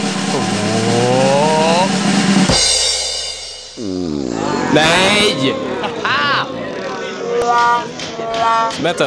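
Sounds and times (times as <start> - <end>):
laughter: 0.2 - 1.9, 4.1 - 7.3
short jingle of revving engine-like tones: 0.2 - 2.0
speech: 4.7 - 5.7, 7.6 - 9.0.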